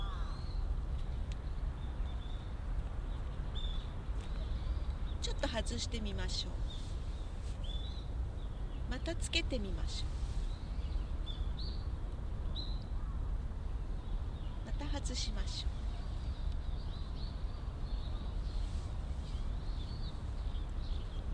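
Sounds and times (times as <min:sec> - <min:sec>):
birds cawing harshly outdoors: 0:00.0 - 0:00.4
steady open-air hiss: 0:00.0 - 0:21.3
speech: 0:05.4 - 0:06.8, 0:09.0 - 0:10.2, 0:15.1 - 0:15.8.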